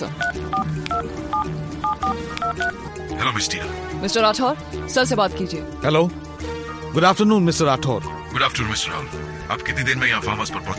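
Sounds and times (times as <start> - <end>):
speech: 0.0 - 10.7
touch-tone beeps of a phone number being dialed: 0.1 - 2.8.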